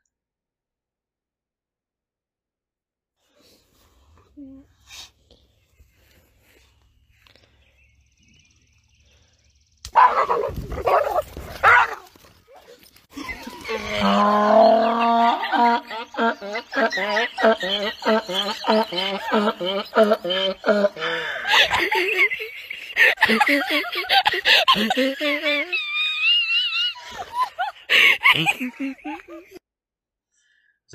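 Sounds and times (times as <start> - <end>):
donkey braying at a boxer dog: 10.0 - 22.4
laughter: 13.1 - 29.6
speech: 17.0 - 22.5, 23.3 - 25.7.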